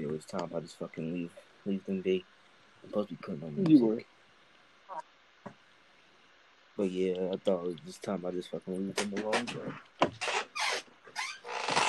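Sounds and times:
speech: 0:00.2 - 0:04.1, 0:06.8 - 0:10.2
squeaky chair creaking: 0:09.0 - 0:11.8.

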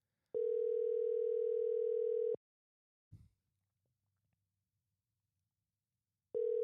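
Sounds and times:
phone ringing tone on the line: 0:00.4 - 0:02.4, 0:06.4 - 0:06.6.

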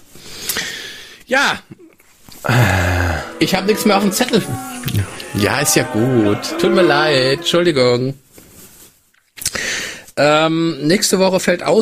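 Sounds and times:
speech: 0:01.3 - 0:01.8, 0:02.4 - 0:02.8, 0:03.4 - 0:08.2, 0:10.2 - 0:11.7
laughter: 0:02.5 - 0:06.3
dog grunting: 0:02.5 - 0:07.5.

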